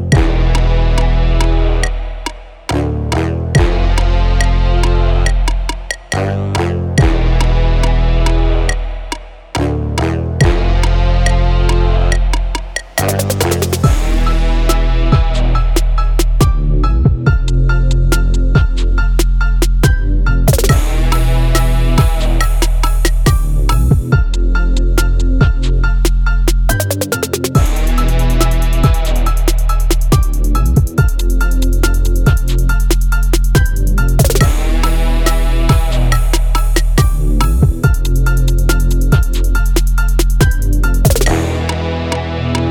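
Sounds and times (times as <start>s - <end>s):
trap beat: 0.1s - 42.7s.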